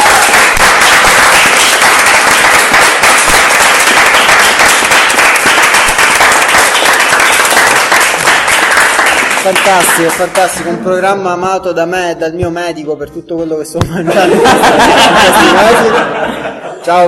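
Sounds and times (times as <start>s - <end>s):
crowd applauding at the close of a dinner show: 0.0s - 10.6s
speech: 9.5s - 16.2s, 16.8s - 17.0s
laughter: 13.8s - 17.0s.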